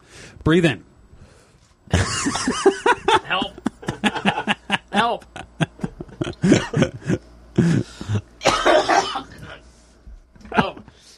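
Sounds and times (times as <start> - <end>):
speech: 0.4 - 0.9, 1.9 - 3.6, 5.0 - 5.5
laughter: 1.9 - 8.2
person in hard coughing fit after smoking cigarette: 6.3 - 9.6
person gasping: 6.4 - 8.3.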